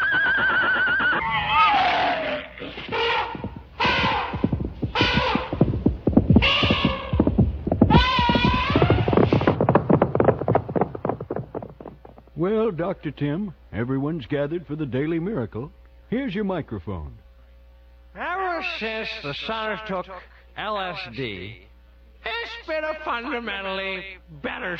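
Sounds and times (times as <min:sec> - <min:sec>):
horses neighing and whinnying: 0:00.0 - 0:05.8, 0:07.9 - 0:12.2
dull thuds and clatter: 0:02.9 - 0:12.4
speech: 0:12.4 - 0:17.2, 0:18.6 - 0:24.7.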